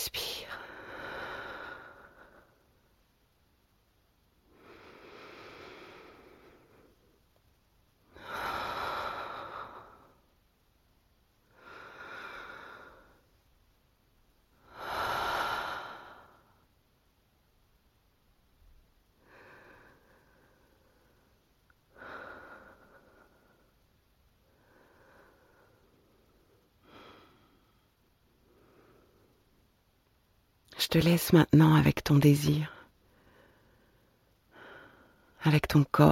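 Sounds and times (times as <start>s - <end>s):
slow deep breathing during a guided relaxation exercise: 0.6s - 2.9s, 4.4s - 7.4s, 8.0s - 10.5s, 11.4s - 13.4s, 14.6s - 16.8s, 19.1s - 30.0s, 32.9s - 35.4s
speech: 30.9s - 32.8s, 35.4s - 36.1s.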